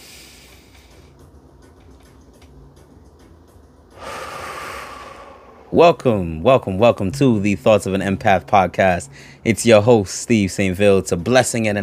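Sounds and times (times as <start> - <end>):
deep breath: 0.0 - 1.1, 3.9 - 5.8, 9.1 - 9.4
faint regular clicking: 1.6 - 2.6
speech: 5.7 - 11.8.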